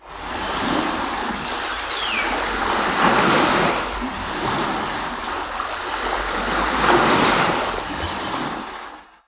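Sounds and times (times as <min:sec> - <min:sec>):
ocean sounds: 0:00.0 - 0:09.2
ocean seagull calling: 0:01.4 - 0:02.9.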